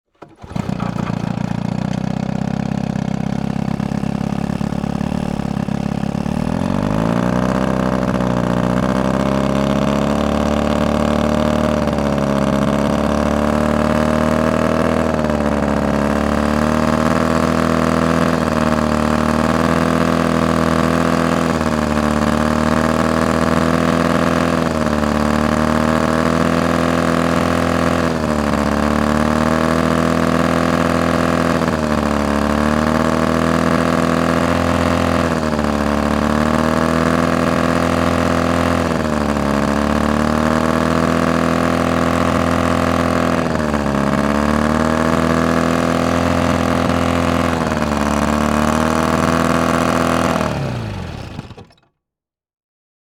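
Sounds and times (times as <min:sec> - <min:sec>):
boat outboard motor: 0:00.2 - 0:51.7.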